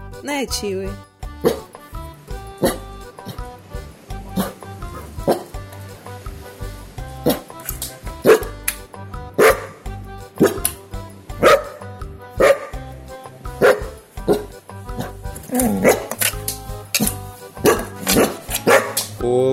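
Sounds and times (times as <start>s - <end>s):
speech: 0.2s - 1.6s
dog barking with sharp barks and yips: 1.4s - 1.7s, 2.6s - 3.5s, 4.4s - 5.5s, 7.2s - 7.5s, 8.2s - 8.6s, 9.4s - 9.8s, 10.4s - 10.8s, 11.4s - 12.8s, 13.6s - 16.2s, 17.0s - 19.1s.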